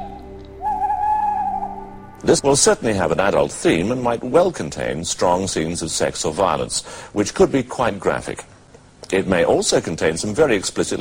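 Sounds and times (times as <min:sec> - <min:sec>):
owl hooting: 0:00.0 - 0:02.1
low steady hum: 0:00.0 - 0:10.9
speech: 0:02.2 - 0:08.5, 0:09.1 - 0:10.9.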